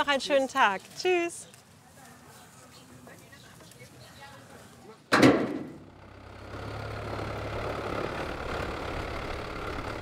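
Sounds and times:
speech: 0.0s - 1.5s
sharp thud: 5.1s - 5.8s
oyster farmers' boat engine starting and idling: 5.8s - 10.0s.

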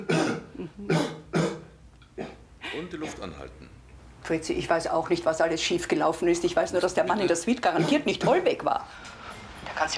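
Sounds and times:
speech: 0.0s - 1.2s, 2.2s - 9.2s, 9.8s - 9.9s
person coughing forcefully: 0.0s - 3.4s.

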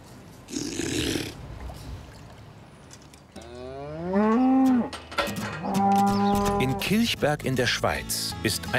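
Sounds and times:
cow mooing: 3.4s - 5.0s, 5.6s - 6.8s
speech: 6.8s - 8.7s.

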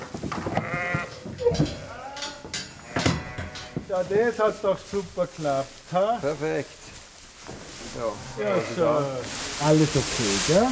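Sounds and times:
shuffling and rustle: 0.0s - 10.7s
pregnant sheep bleating: 0.5s - 3.8s, 8.1s - 9.2s
speech: 4.0s - 6.8s, 7.4s - 10.7s.

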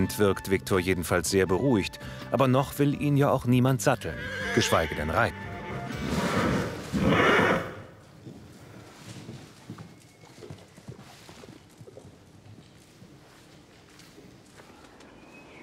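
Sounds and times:
speech: 0.0s - 6.2s
horse hooves clopping: 0.0s - 15.3s
horse snorting: 4.2s - 8.0s.

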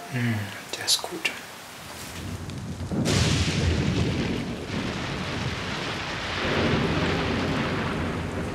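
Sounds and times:
steady hiss: 0.0s - 8.5s
speech: 0.1s - 1.4s
thunder from a thunderstorm in the mountains: 1.8s - 8.5s.

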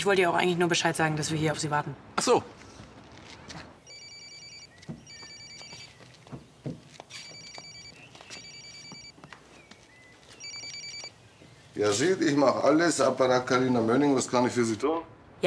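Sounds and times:
speech: 0.0s - 2.7s, 11.8s - 15.4s
mobile phone ringing: 3.8s - 6.0s, 7.1s - 9.2s, 10.4s - 11.2s.

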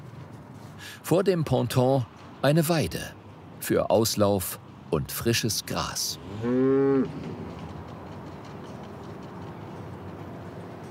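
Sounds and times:
faint noise: 0.0s - 10.8s
speech: 0.8s - 7.3s
cow mooing on a floating dairy barn in Rotterdam: 6.3s - 7.2s.

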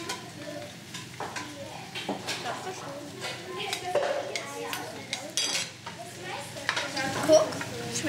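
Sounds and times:
soft steady sizzle of cooking: 0.0s - 8.0s
metal spoon scraping and clinking against a cooking pot: 5.1s - 5.9s.

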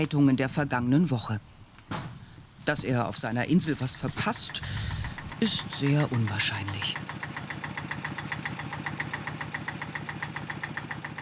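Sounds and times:
speech: 0.0s - 1.6s, 2.6s - 7.2s
diesel tractor engine idling: 3.6s - 11.2s.

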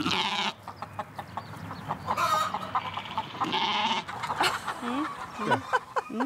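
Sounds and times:
bleating-like calls: 0.0s - 0.6s, 2.2s - 4.1s
flock of chickens clucking and squawking: 0.0s - 6.2s.

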